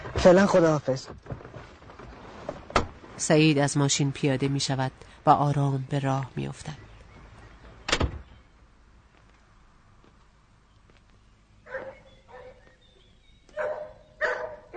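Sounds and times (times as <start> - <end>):
speech: 0.2 - 1.3, 3.2 - 6.8
dog barking in short sharp bursts: 11.7 - 12.8, 13.5 - 14.7.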